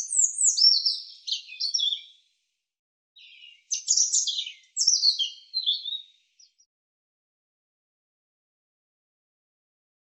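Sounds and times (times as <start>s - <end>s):
European robin singing trills and thin whistles: 0.0s - 2.2s, 3.2s - 6.7s.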